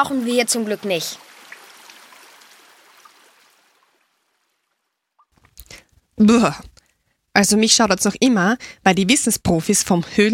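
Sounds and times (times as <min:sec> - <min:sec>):
speech: 0:00.0 - 0:01.3, 0:06.2 - 0:06.7, 0:07.4 - 0:10.3
stream flowing inside a cave: 0:00.0 - 0:05.3.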